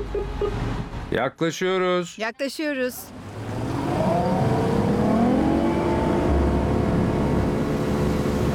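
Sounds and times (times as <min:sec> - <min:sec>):
speech: 0:00.1 - 0:03.2
speedboat engine roaring at high speed: 0:03.1 - 0:08.5
rushing wash beneath a speedboat: 0:03.2 - 0:08.5.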